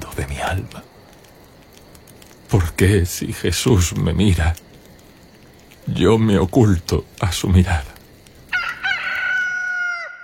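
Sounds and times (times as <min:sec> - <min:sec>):
speech: 0:00.2 - 0:01.0, 0:02.5 - 0:04.6, 0:05.9 - 0:07.9
rooster crowing: 0:08.5 - 0:10.2.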